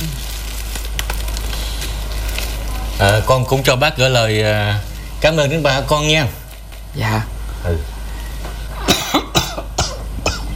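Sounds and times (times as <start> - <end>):
faint hum: 0.0 - 10.5
speech: 3.0 - 7.9
man coughing harshly: 8.8 - 10.5.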